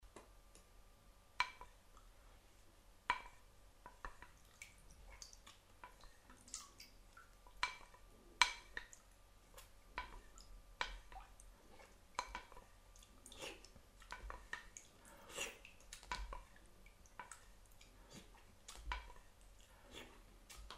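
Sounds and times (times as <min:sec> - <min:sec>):
eating with wooden utensils: 0:03.0 - 0:20.7.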